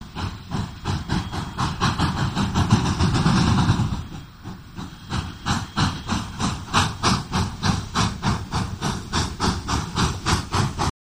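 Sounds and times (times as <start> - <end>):
steam locomotive slowing in with engine revs: 0.0 - 10.9.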